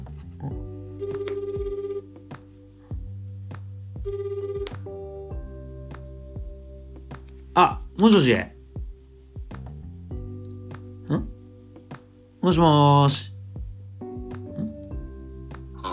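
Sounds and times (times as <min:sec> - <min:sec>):
phone melodic ringtone for an incoming call: 0:00.6 - 0:02.7, 0:04.0 - 0:05.5
speech: 0:07.6 - 0:08.6, 0:12.5 - 0:13.3.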